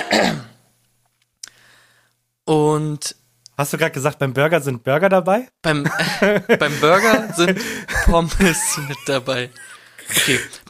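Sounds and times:
raspy throat clearing: 0:00.0 - 0:00.6
speech: 0:02.5 - 0:10.6
laughter: 0:05.8 - 0:10.6.

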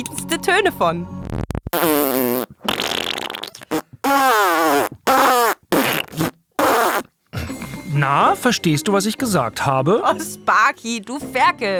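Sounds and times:
speech: 0:00.0 - 0:01.9, 0:08.1 - 0:11.7
person imitating a herring fart with raspberry noises: 0:01.4 - 0:07.7.

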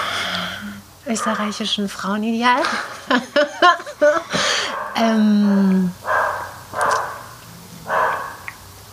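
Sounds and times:
dog barking: 0:01.1 - 0:01.6, 0:04.7 - 0:05.0, 0:06.0 - 0:08.5
speech: 0:01.1 - 0:06.0
laughter: 0:02.6 - 0:04.8.

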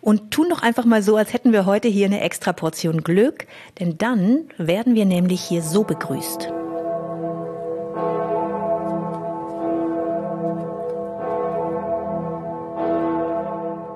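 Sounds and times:
speech: 0:00.0 - 0:06.6
huge deep cathedral bell tolling in Erfurt Germany: 0:05.2 - 0:13.9.

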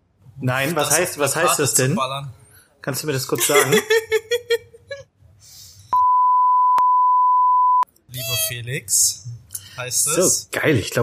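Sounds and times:
speech: 0:00.4 - 0:04.6, 0:08.5 - 0:11.0
laughter: 0:03.4 - 0:05.0
censor bleep at a single pitch: 0:06.0 - 0:07.9.

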